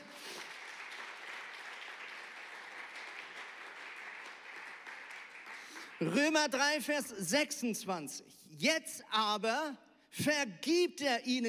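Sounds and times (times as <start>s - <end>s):
audience applause: 0.0s - 6.2s
speech: 6.0s - 11.4s.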